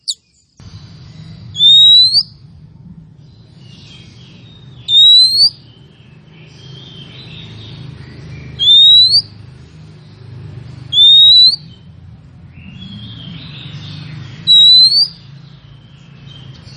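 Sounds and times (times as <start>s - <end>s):
female Oriental magpie-robin calling male with long clear rising whistle: 0.0s - 0.2s, 1.5s - 2.4s, 4.8s - 5.6s, 8.6s - 9.3s, 10.9s - 11.8s, 14.4s - 15.2s
steady low background hum: 0.0s - 16.7s.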